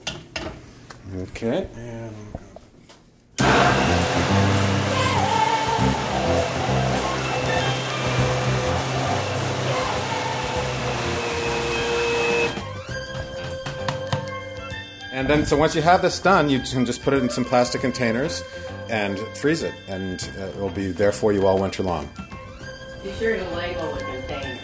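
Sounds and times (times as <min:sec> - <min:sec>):
speech: 0:01.1 - 0:02.4, 0:15.2 - 0:22.2, 0:23.0 - 0:24.6
high-speed blender pureeing apple butter: 0:03.4 - 0:12.6.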